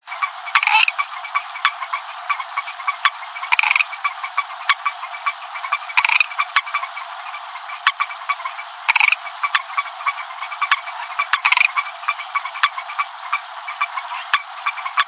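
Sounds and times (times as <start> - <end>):
Leptodactylus melanonotus calling: 0.0 - 15.0.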